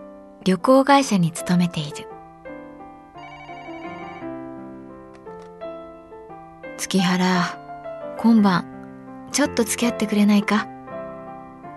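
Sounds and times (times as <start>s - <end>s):
speech: 0.4s - 2.1s, 6.8s - 7.6s, 8.2s - 8.7s, 9.3s - 10.7s
internal office telephone ringing with bright electronic melody at a travel agency branch office: 3.1s - 4.7s.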